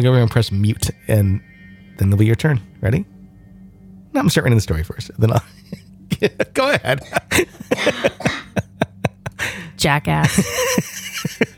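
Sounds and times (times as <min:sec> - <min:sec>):
speech: 0:00.0 - 0:03.1, 0:04.1 - 0:08.4, 0:09.8 - 0:11.4
laughter: 0:05.4 - 0:09.6, 0:10.2 - 0:11.5
raspy coughing fit: 0:05.6 - 0:09.7.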